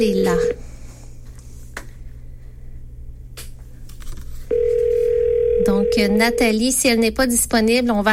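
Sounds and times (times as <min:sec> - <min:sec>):
loud steady phone line tone: 0:00.0 - 0:00.6, 0:04.5 - 0:06.7
speech: 0:00.0 - 0:00.7, 0:06.0 - 0:08.1.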